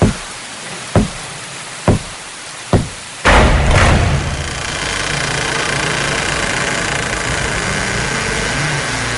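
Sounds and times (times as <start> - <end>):
rumbling noise: 0.0 - 9.1
knocking on a door: 1.0 - 1.2, 1.9 - 2.1, 2.7 - 3.0.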